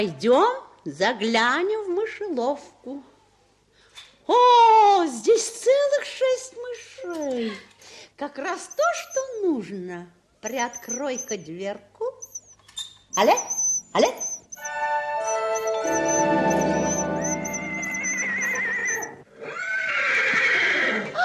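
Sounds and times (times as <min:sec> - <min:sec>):
speech: 0:00.0 - 0:03.1, 0:04.3 - 0:12.1, 0:13.2 - 0:16.0
sustained shimmering chiming tone: 0:14.6 - 0:19.2
horses whinnying and neighing: 0:15.3 - 0:21.1.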